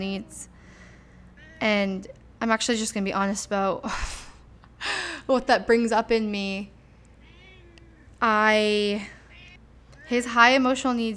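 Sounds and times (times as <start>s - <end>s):
speech: 0.0s - 0.5s, 1.6s - 4.2s, 5.3s - 6.7s, 8.2s - 9.2s, 10.1s - 11.1s
cat meowing for attention: 7.2s - 8.0s.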